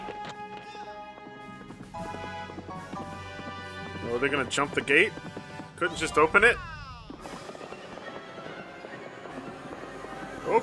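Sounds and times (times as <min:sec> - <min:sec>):
horse hooves clip-clopping: 0:00.0 - 0:10.6
speech: 0:04.1 - 0:06.7.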